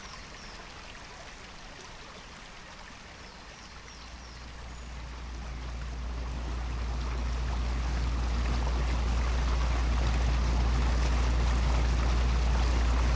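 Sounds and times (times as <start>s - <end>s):
water rushing and splashing: 0.0s - 13.1s
boat engine drone travelling up the River Blackwater: 4.2s - 13.1s.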